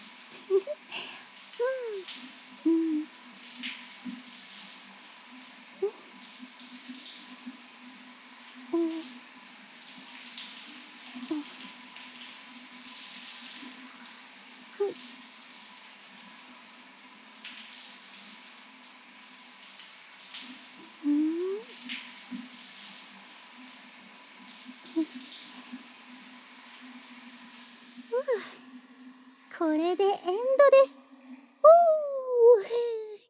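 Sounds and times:
running water from a shower or tap: 0.0 - 33.0
speech: 29.6 - 31.0.

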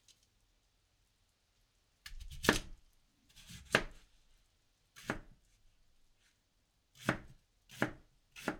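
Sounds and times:
knife chopping daikon radish on a cutting board: 2.1 - 2.7, 3.4 - 4.0, 5.0 - 5.4, 7.0 - 8.5.

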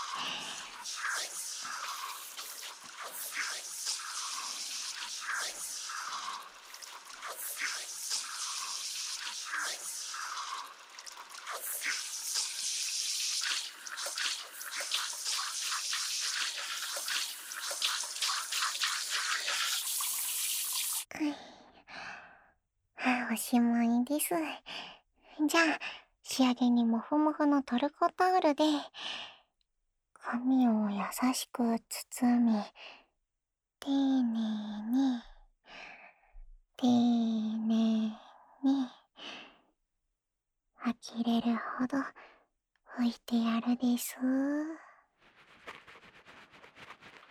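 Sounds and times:
running water rinsing shampoo foam from hair: 0.0 - 21.1, 45.2 - 47.3
soft wet crackles and small drips: 0.0 - 21.1
speech: 23.5 - 24.7, 25.4 - 29.0, 30.3 - 33.0, 33.8 - 35.3, 36.8 - 39.4, 40.8 - 42.3, 43.0 - 44.8.

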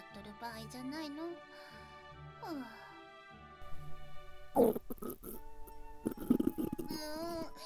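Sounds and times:
speech: 0.1 - 1.8, 2.4 - 2.9
stomach growling from hunger: 4.5 - 7.6.

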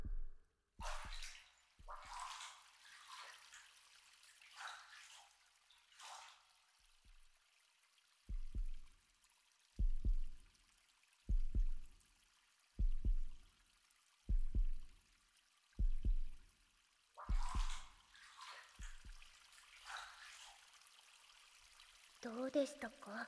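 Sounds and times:
heartbeat heard with an ear against a chest: 0.0 - 1.2, 8.3 - 8.9, 9.8 - 10.4, 11.3 - 12.0, 12.8 - 13.4, 14.3 - 15.0, 15.8 - 16.4, 17.3 - 17.9, 18.8 - 19.2
speech: 22.2 - 23.2.

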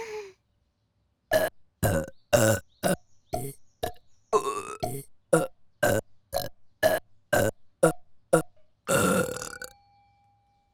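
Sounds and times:
long burp: 1.3 - 9.7.

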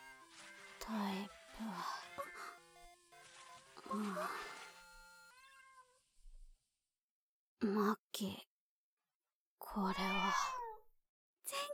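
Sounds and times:
soft electronic tones: 0.0 - 5.5
person imitating a cat meowing: 9.8 - 10.8.

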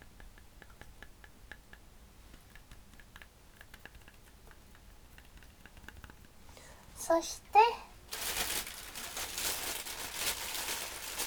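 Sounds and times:
speech: 7.1 - 7.8
plastic bag rustling: 8.1 - 11.2.

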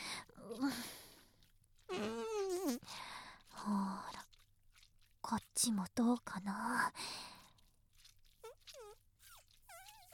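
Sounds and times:
speech: 0.5 - 0.9, 5.6 - 7.2
loud drawn-out buzzy fart: 1.9 - 2.8, 8.4 - 10.1
woman speaking soft words: 3.5 - 4.3, 5.2 - 7.0.

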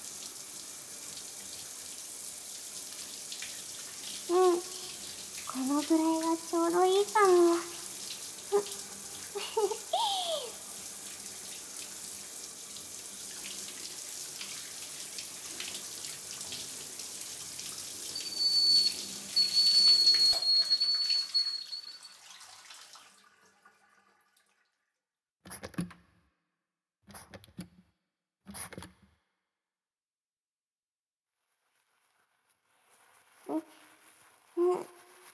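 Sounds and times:
shower water spraying onto hair: 0.0 - 22.9
speech: 5.6 - 7.7, 8.5 - 8.8.

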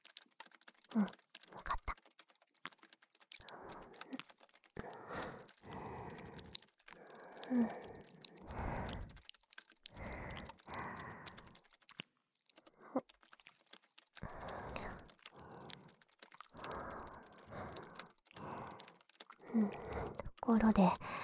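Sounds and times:
sharp keyboard clicks: 0.0 - 21.2
speech: 0.9 - 1.2, 20.5 - 21.2
airy breathing into a microphone: 3.4 - 9.3, 9.9 - 11.7, 14.2 - 21.2.

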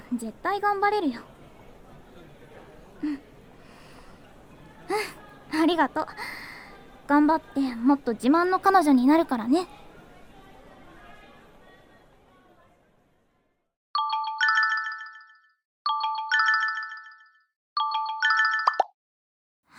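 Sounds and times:
faint chatter: 0.0 - 13.7
speech: 0.1 - 1.3, 3.0 - 3.3, 4.9 - 6.4, 7.1 - 9.8
mobile phone ringtone: 14.0 - 18.9.

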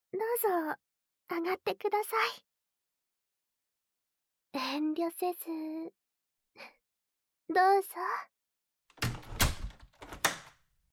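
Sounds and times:
speech: 0.2 - 2.5, 4.5 - 6.0, 6.6 - 6.8, 7.5 - 8.3
door slammed shut at the entrance of a home: 9.0 - 10.5.

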